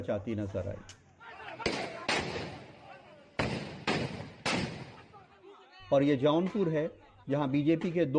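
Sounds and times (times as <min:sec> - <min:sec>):
speech: 0:00.0 - 0:01.0, 0:05.9 - 0:08.1
gunshots fired during a clash in Kasmanda, Sitapur: 0:01.6 - 0:05.2.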